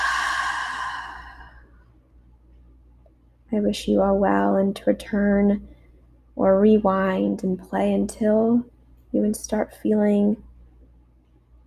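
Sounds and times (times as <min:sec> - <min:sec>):
deep breath in and out: 0:00.0 - 0:01.8
speech: 0:03.5 - 0:05.7, 0:06.4 - 0:10.5.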